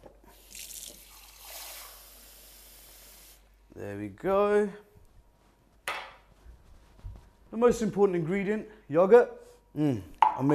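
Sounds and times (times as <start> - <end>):
water running from a tap into a cup at a sink: 0.3 - 3.4
speech: 3.8 - 4.9, 7.6 - 10.5.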